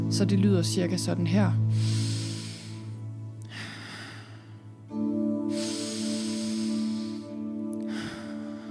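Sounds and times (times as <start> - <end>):
speech: 0.2 - 2.0
forceful nose inhale and relaxed exhale of a breathing exercise: 1.7 - 4.7, 5.4 - 8.7.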